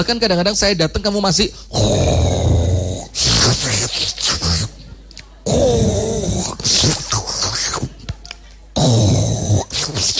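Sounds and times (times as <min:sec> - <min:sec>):
speech: 0:00.0 - 0:02.3
person imitating snoring: 0:01.7 - 0:04.7, 0:05.4 - 0:07.8, 0:08.8 - 0:10.1.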